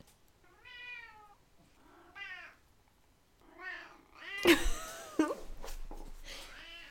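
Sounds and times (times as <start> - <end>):
cat meowing in drawn-out wavering calls: 0.4 - 2.6, 3.5 - 4.5, 6.5 - 6.9
laughter: 4.4 - 5.4.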